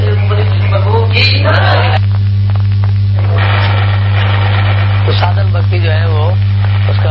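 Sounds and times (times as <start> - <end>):
electric fan humming: 0.0 - 7.0.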